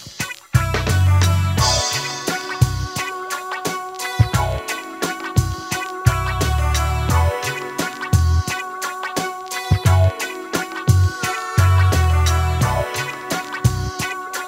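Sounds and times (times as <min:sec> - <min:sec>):
sitar guitar: 0:00.6 - 0:14.4.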